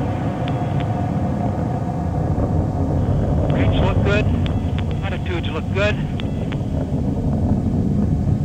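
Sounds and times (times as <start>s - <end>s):
rocket engines burning during launch ascent: 0.0s - 8.4s
speech: 4.1s - 4.4s, 5.7s - 6.1s.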